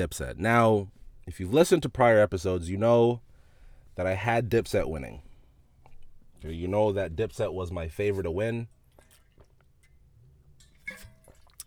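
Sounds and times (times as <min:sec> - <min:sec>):
speech: 0:00.0 - 0:03.3, 0:04.0 - 0:05.3, 0:06.4 - 0:08.8
person drinking water with sips, swallows and lip smacks: 0:08.8 - 0:10.0, 0:10.6 - 0:11.6.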